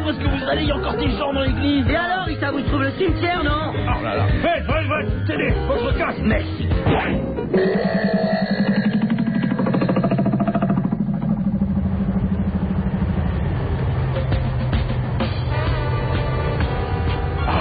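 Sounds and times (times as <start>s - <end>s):
speech: 0.1s - 8.8s
car engine accelerating and pulling away: 8.5s - 17.5s.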